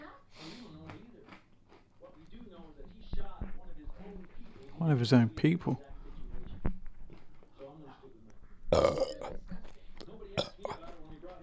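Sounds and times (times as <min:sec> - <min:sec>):
mouth and chewing noises: 0:00.8 - 0:03.0, 0:08.2 - 0:11.4
speech: 0:04.8 - 0:05.9
loud drawn-out burp: 0:08.7 - 0:09.4, 0:10.4 - 0:10.8.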